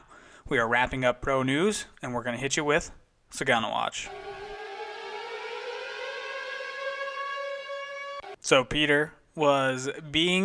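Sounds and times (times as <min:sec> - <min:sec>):
speech: 0:00.5 - 0:04.3, 0:08.4 - 0:10.4
siren sound effect wailing: 0:04.1 - 0:08.5.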